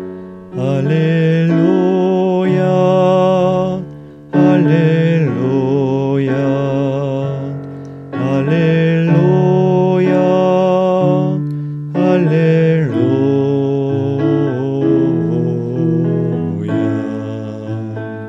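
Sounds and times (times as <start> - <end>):
voice singing a refrain: 0.6 - 7.6, 8.2 - 18.2.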